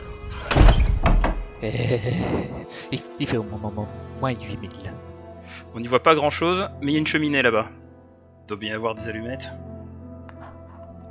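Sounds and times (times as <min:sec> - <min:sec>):
wooden cabin door in the woods pushed shut during a storm: 0:00.4 - 0:01.6
wooden cabin door knocks as it settles: 0:00.7 - 0:01.5
speech: 0:01.6 - 0:05.1, 0:05.7 - 0:07.8, 0:08.5 - 0:09.6.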